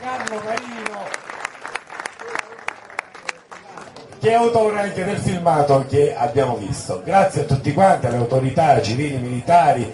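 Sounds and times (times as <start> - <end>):
audience applause at a public ceremony honouring officials and guests: 0.0 - 4.2
speech: 4.2 - 9.9.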